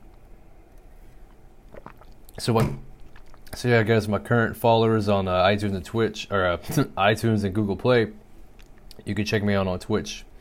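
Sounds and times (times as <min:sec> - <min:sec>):
low hum: 0:00.0 - 0:10.3
person sipping water: 0:00.7 - 0:04.1
small wet slurps and swallows: 0:00.8 - 0:03.6
speech: 0:02.4 - 0:02.9, 0:03.6 - 0:08.2, 0:09.0 - 0:10.3.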